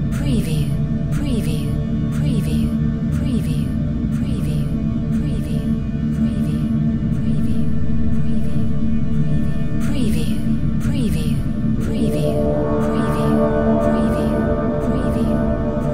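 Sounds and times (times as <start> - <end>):
brass drone sound effect: 0.1 - 15.9.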